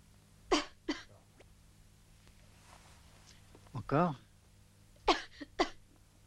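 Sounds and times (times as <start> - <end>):
faint low hum: 0.0 - 6.2
short dry coughs: 0.5 - 1.2, 5.0 - 5.9
speech: 3.9 - 4.2.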